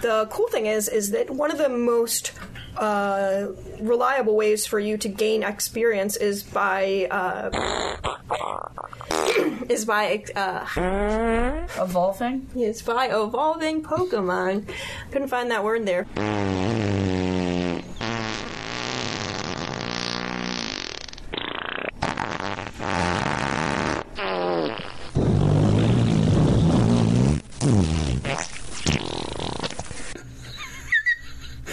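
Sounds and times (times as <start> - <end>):
speech: 0.0 - 16.8
varied buzzy, rippling, wet and squeaky fart sound effects: 7.5 - 9.5, 10.8 - 11.8, 16.1 - 30.2.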